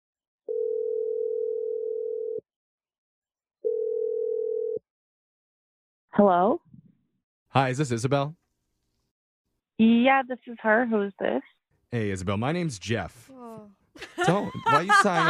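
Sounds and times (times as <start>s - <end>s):
telephone dial tone: 0.5s - 2.4s, 3.6s - 4.8s
speech: 6.2s - 6.6s, 7.5s - 8.4s, 9.8s - 15.2s
laughter: 14.0s - 15.2s.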